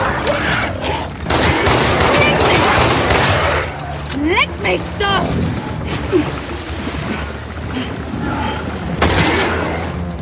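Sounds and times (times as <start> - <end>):
dense rumbling noisy background: 0.0 - 10.2
gunshots from a firearm: 1.2 - 3.7.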